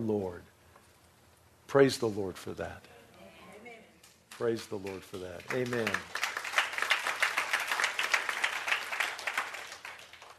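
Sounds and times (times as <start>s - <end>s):
speech: 0.0s - 0.5s, 1.7s - 2.9s, 4.4s - 6.2s
audience clapping and applauding: 4.3s - 10.3s.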